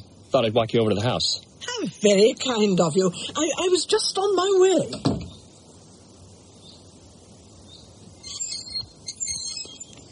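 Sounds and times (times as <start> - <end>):
speech: 0.3 - 5.2
squeaky gate creaking open: 8.2 - 10.0.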